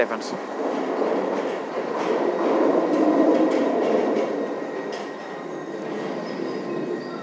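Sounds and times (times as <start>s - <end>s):
London Underground train pulling into a platform on the Circle Line: 0.0s - 7.2s
faint high wheel squeal of an underground train: 4.5s - 7.2s.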